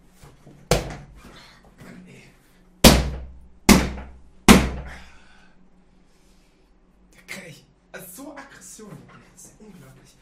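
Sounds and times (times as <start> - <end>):
fist pounding a chair: 0.7 - 1.1, 2.8 - 5.0.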